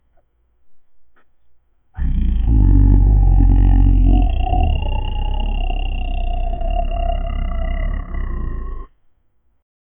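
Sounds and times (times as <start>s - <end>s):
low rasping gritty undead growl: 2.0s - 8.9s.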